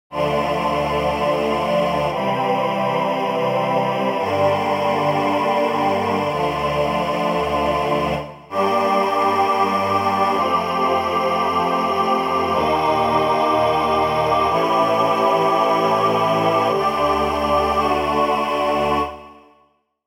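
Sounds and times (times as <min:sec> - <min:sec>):
choir: 0:00.1 - 0:19.8.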